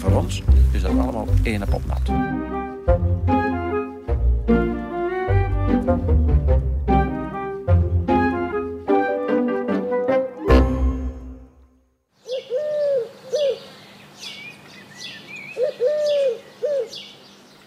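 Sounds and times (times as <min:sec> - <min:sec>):
music: 0:00.0 - 0:11.8
speech: 0:00.1 - 0:03.3
bird courtship call from a tree: 0:12.2 - 0:17.6.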